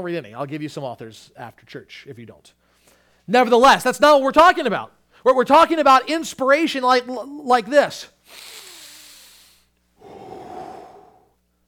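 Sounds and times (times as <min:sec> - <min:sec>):
speech: 0:00.0 - 0:02.6, 0:03.3 - 0:08.5
deep breath in and out: 0:08.3 - 0:11.4.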